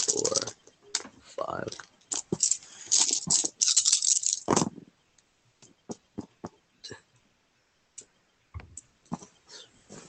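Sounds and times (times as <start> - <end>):
dice rattling in a cup or hand: 0.0 - 0.6, 1.6 - 4.7
speech: 1.5 - 1.9.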